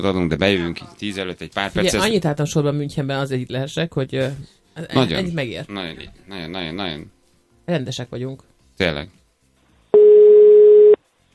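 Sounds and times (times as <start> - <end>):
speech: 0.0 - 9.2
telephone ringback tone while calling someone: 10.0 - 11.0.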